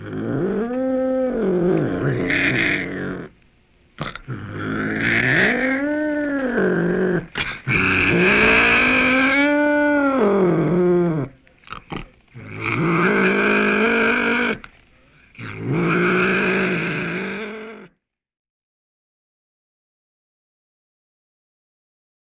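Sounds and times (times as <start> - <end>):
cougar yowling: 0.0 - 3.4, 4.0 - 14.7, 15.4 - 17.9.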